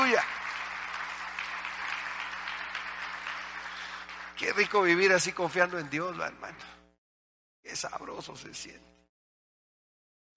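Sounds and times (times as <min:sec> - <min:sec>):
congregation applauding: 0:00.0 - 0:06.3
speech: 0:00.1 - 0:00.4, 0:04.4 - 0:06.8, 0:07.6 - 0:09.0.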